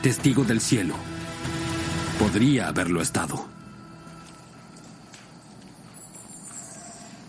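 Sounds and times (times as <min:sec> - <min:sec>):
speech: 0:00.0 - 0:01.2, 0:02.2 - 0:03.6
birds calling in jungle atop a Maya pyramid: 0:03.6 - 0:07.2
monkey cries in jungle: 0:06.4 - 0:07.2.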